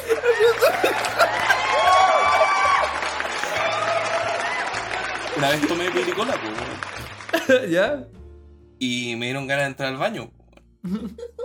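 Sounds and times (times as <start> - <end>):
scattered laughter: 0.0 - 1.8, 7.3 - 7.6, 10.8 - 11.4
cheering voices: 0.0 - 7.4
crowd clapping: 0.0 - 7.7
speech: 5.4 - 8.2, 8.8 - 11.3.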